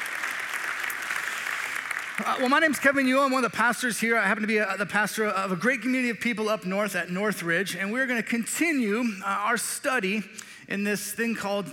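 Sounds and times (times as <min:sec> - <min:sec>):
room full of people applauding: 0:00.0 - 0:03.0
speech: 0:02.2 - 0:11.7.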